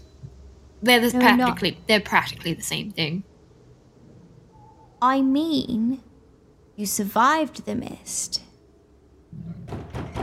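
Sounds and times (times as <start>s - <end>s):
speech: 0.8s - 3.3s, 5.0s - 6.1s, 6.8s - 8.5s
heavy thumping on a door: 9.5s - 10.2s.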